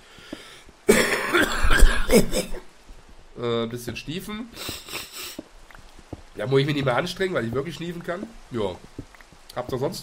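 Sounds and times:
person coughing on purpose: 0.9 - 2.6
speech: 2.1 - 2.6, 3.4 - 4.8, 6.4 - 10.0.

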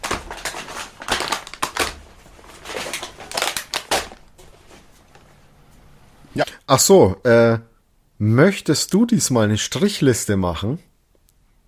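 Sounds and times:
plastic bag crinkling as items are unpacked for a freezer: 0.0 - 5.4
speech: 6.7 - 10.9.

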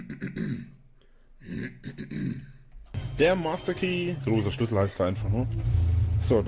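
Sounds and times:
gravelly throat clearing: 0.0 - 0.8, 1.4 - 2.6
speech: 1.5 - 2.5, 3.2 - 6.4.

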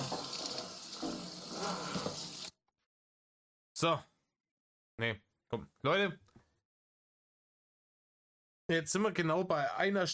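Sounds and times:
running tap water rinsing a cutting board: 0.0 - 2.5
speech: 3.8 - 4.1, 5.0 - 6.3, 8.7 - 10.1.

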